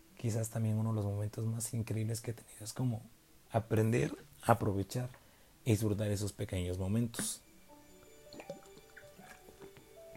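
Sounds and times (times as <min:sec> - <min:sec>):
speech: 0:00.2 - 0:07.4
person sipping water with slurping and a gulp: 0:08.2 - 0:10.1.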